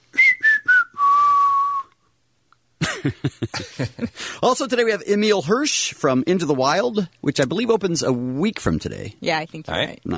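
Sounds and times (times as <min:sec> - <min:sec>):
people whistling a pop song melody: 0:00.1 - 0:02.0
laughter: 0:02.8 - 0:04.2
speech: 0:03.0 - 0:10.1.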